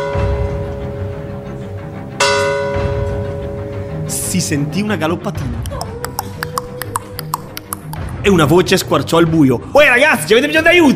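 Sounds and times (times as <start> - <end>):
church bell striking midnight by a lagoon: 0.0 - 4.7
speech: 4.3 - 5.9, 8.2 - 10.9.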